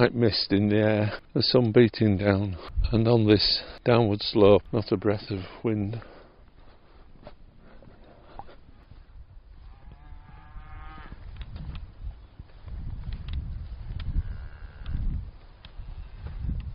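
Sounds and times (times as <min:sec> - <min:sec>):
speech: 0:00.0 - 0:06.1
herd of black cattle lowing outdoors: 0:06.8 - 0:11.4.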